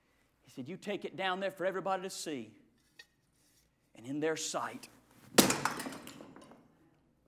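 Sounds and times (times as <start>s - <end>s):
speech: 0.5s - 2.6s, 4.0s - 5.6s
pottery smashing with a sharp crack: 5.3s - 6.7s.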